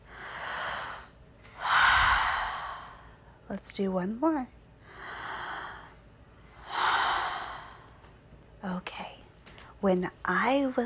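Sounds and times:
person taking a big deep breath: 0:00.0 - 0:03.3, 0:04.8 - 0:08.0
speech: 0:03.5 - 0:04.6, 0:09.8 - 0:10.8.

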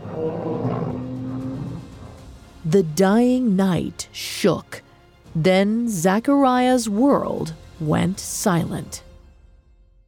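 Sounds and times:
huge behemoth creature roaring: 0:00.0 - 0:02.4
speech: 0:02.7 - 0:09.1.

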